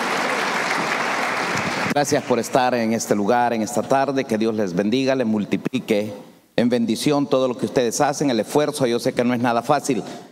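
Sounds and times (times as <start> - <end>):
audience applause: 0.0 - 2.0
speech: 2.0 - 10.3.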